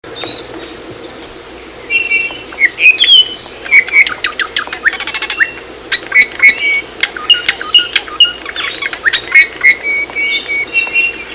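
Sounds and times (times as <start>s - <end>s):
steady low hum and hiss: 0.0s - 11.3s
ʻApapane singing: 1.8s - 11.3s.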